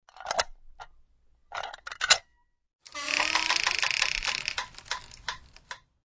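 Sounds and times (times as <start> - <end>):
door opening: 2.9 - 5.7.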